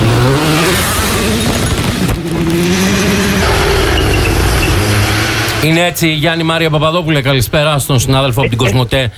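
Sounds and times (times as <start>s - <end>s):
car engine flat out in sixth gear through a corner: 0.0s - 5.8s
speech: 5.6s - 9.1s.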